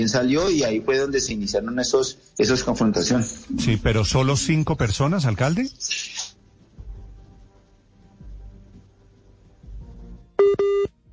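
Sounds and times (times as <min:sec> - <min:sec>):
speech: 0:00.0 - 0:06.3
call tone electronic beeps on a call over mobile data: 0:10.4 - 0:10.9.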